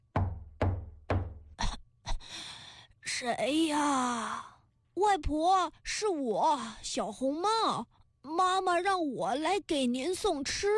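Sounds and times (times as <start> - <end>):
knocking on a wooden door: 0.0 - 1.6
speech: 3.2 - 10.7.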